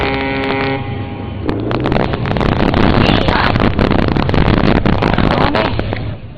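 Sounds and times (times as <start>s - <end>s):
fishing boat engine rumbling at Shazikou fishing port pier in Qingdao China: 0.0s - 6.3s
sea waves: 0.0s - 6.3s
wind buffeting: 0.0s - 6.3s.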